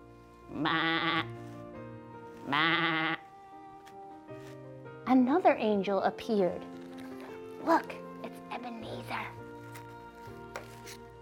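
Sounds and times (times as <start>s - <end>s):
sheep bleating: 0.5s - 1.4s, 2.4s - 3.2s
speech: 0.5s - 1.4s, 2.5s - 3.0s, 5.1s - 6.7s, 7.6s - 8.0s.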